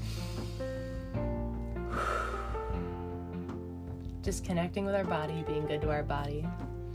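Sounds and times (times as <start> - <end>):
deep breath: 0.0 - 1.2, 1.8 - 3.1
speech: 4.2 - 6.8.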